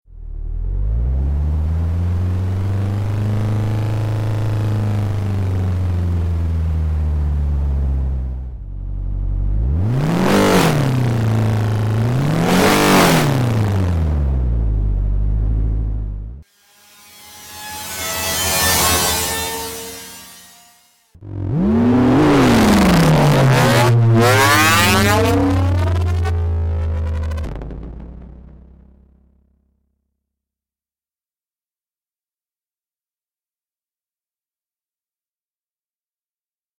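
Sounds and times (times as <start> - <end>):
race car: 0.1 - 29.1.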